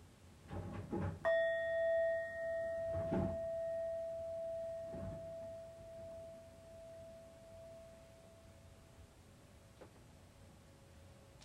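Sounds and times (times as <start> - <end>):
meditation bell ringing: 1.3 - 9.0.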